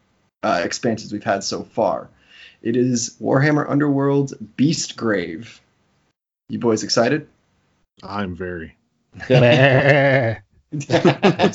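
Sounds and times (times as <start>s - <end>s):
speech: 0.4s - 5.6s, 6.5s - 7.4s, 8.0s - 11.5s
laughter: 9.2s - 11.5s
man imitating a goat bleat: 9.4s - 10.4s.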